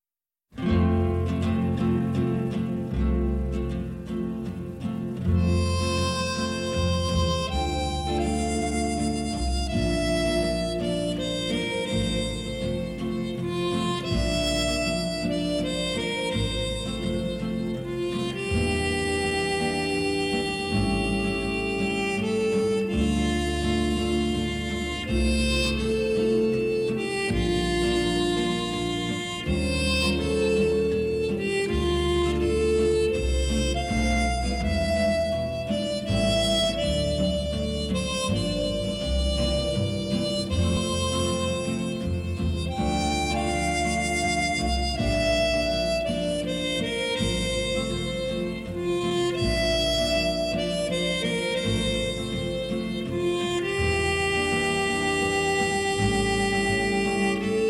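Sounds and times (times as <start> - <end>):
guitar: 0.5 - 57.6
harmonica: 0.6 - 57.6.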